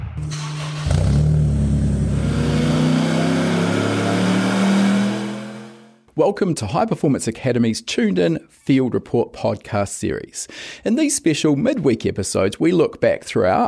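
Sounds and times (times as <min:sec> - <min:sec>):
Mitsubishi Evo X drag race car engine revving: 0:00.2 - 0:05.9
speech: 0:06.2 - 0:13.6.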